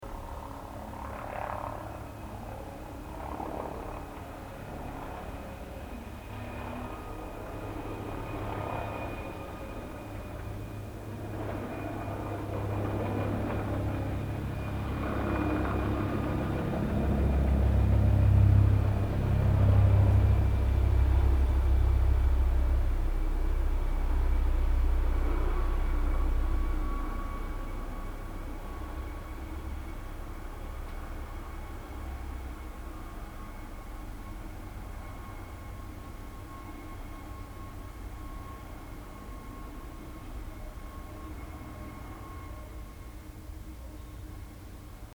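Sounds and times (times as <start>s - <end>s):
helicopter: 0.0s - 45.1s.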